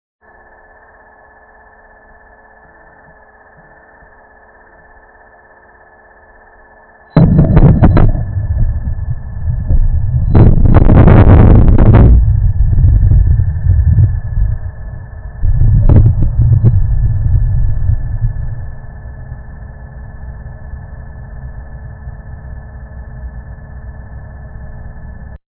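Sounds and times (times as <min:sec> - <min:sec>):
NW Rota volcanic eruption: 0:07.2 - 0:19.2.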